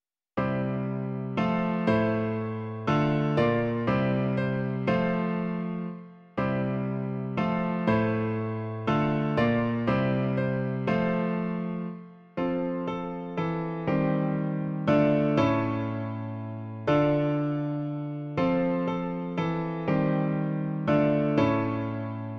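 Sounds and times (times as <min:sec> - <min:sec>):
piano version of an Easter hymn: 0:00.4 - 0:22.3.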